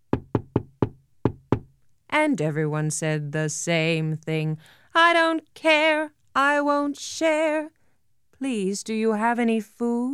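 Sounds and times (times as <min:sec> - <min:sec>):
firm knocking on a wooden door: 0:00.1 - 0:01.8
speech: 0:02.1 - 0:07.8, 0:08.4 - 0:10.1.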